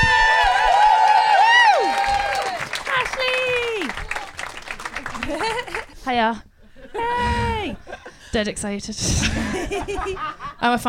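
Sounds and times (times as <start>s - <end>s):
people whooping and cheering: 0.0s - 4.4s
audience applause: 0.0s - 5.9s
laughter: 4.9s - 6.0s, 9.1s - 10.7s
speech: 6.1s - 7.3s, 8.3s - 10.8s.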